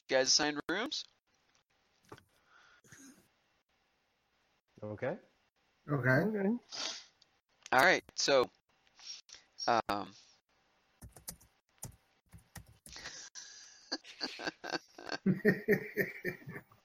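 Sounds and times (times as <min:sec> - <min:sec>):
speech: 0:00.1 - 0:01.2, 0:04.8 - 0:07.0, 0:07.7 - 0:10.2, 0:14.2 - 0:16.7
typing on a computer keyboard: 0:11.0 - 0:13.0
laughter: 0:13.0 - 0:16.6.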